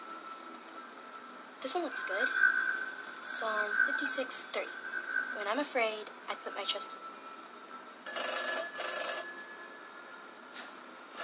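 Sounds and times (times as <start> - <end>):
speech: 1.6 - 2.5, 3.3 - 7.1
old-style telephone bell ringing: 8.0 - 10.0.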